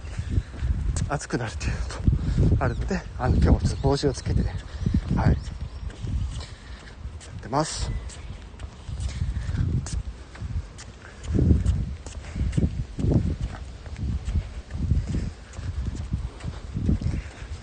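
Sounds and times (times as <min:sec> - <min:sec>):
footsteps of light jogging: 0:00.0 - 0:17.6
speech: 0:01.0 - 0:05.5, 0:07.5 - 0:08.2.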